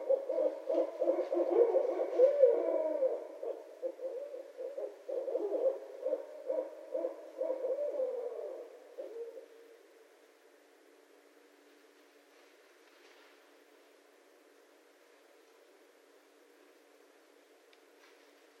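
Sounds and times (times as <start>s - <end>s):
barred owl hooting: 0.0s - 9.9s.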